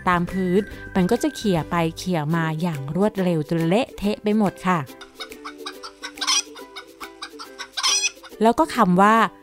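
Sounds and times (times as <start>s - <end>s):
speech: 0.0s - 5.3s, 8.4s - 9.4s
chicken clucking: 5.0s - 8.4s.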